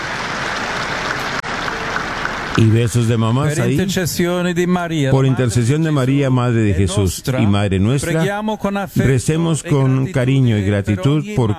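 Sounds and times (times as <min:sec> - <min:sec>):
crowd applause in a public square: 0:00.0 - 0:04.6
speech: 0:02.6 - 0:11.5.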